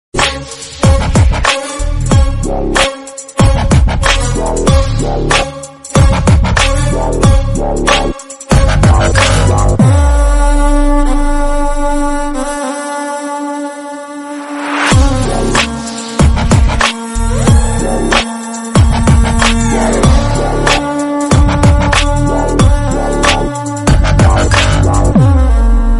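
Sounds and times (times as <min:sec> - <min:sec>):
villain background music ringtone: 0:00.2 - 0:25.9.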